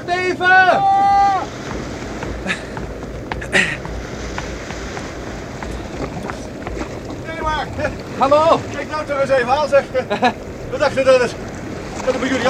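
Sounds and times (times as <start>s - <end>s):
wind: 0.0s - 12.4s
speech: 0.3s - 0.9s, 8.2s - 11.4s, 12.0s - 12.4s
water splashing: 0.5s - 12.4s
person shouting: 0.7s - 1.5s
native boat being pushed off into water: 1.3s - 9.0s
sharp knocks: 1.4s - 7.3s
laughter: 2.3s - 2.8s, 3.4s - 3.9s, 9.8s - 10.8s.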